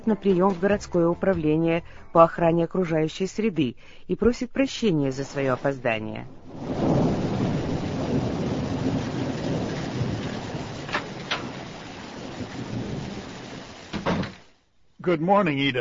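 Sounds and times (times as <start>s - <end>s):
speech: 0.0s - 6.9s, 15.0s - 15.7s
thunder rumbling: 5.1s - 14.6s
heavy rain pouring: 6.3s - 14.6s.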